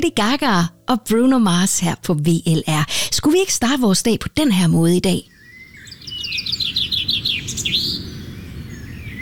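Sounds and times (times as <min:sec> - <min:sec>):
speech: 0:00.0 - 0:05.3
bird chirps and trills: 0:05.1 - 0:09.1.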